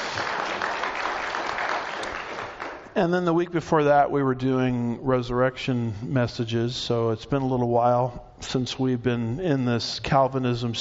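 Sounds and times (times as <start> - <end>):
church congregation clapping: 0.0 - 3.0
speech: 3.0 - 10.8.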